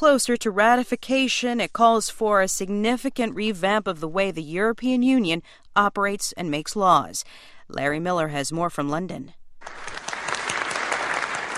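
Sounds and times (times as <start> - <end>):
speech: 0.0 - 10.0
crowd applauding after a head of state signs the European Union's Lisbon Treaty: 9.6 - 11.5.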